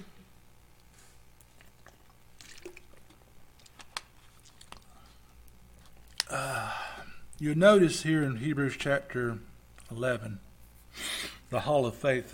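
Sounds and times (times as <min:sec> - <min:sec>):
swallowing water: 0:01.4 - 0:05.3
sipping water: 0:01.4 - 0:07.4
speech: 0:07.4 - 0:12.3.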